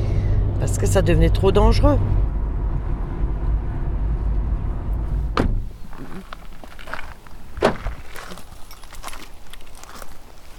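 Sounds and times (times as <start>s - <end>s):
steady low rumble: 0.0s - 8.0s
speech: 0.6s - 2.3s
footsteps crunching on an outdoor forest path: 5.6s - 10.5s.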